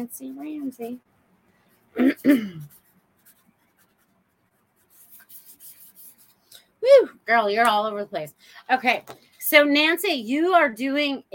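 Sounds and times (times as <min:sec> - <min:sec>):
speech: 0:00.0 - 0:01.1, 0:02.0 - 0:02.8, 0:06.8 - 0:11.3
pen scratching on paper writing a name: 0:02.0 - 0:06.4.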